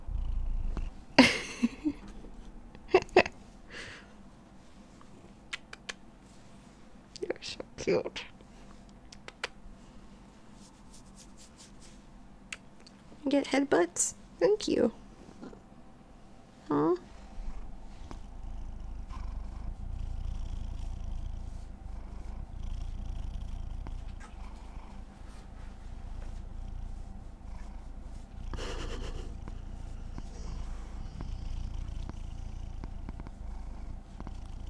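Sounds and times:
cat purring: 0.0s - 3.3s, 14.8s - 15.8s, 16.6s - 34.6s
speech: 7.9s - 8.3s, 13.3s - 15.0s, 16.7s - 17.0s.

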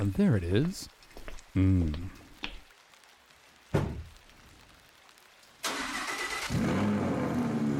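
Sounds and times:
speech: 0.0s - 2.2s
big V10 car engine roaring to life and idling: 5.7s - 7.7s.

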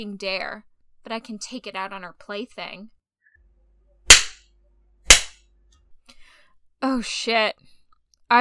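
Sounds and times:
speech: 0.0s - 3.0s, 6.8s - 7.7s
spanking slaps: 4.1s - 4.4s, 5.1s - 5.4s.

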